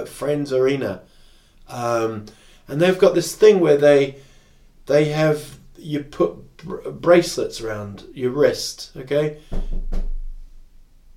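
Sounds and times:
speech: 0.0 - 4.3, 4.9 - 10.1
knock on an office door: 9.5 - 10.4.

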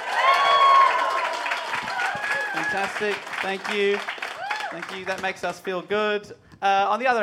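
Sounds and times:
audience cheering voices: 0.0 - 5.3
live audience clapping: 0.0 - 5.8
speech: 2.7 - 7.2.

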